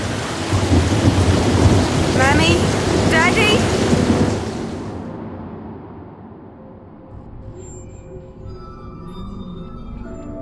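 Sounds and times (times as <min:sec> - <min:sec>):
heavy rain pouring: 0:00.0 - 0:06.4
deep rolling thunder: 0:00.0 - 0:07.4.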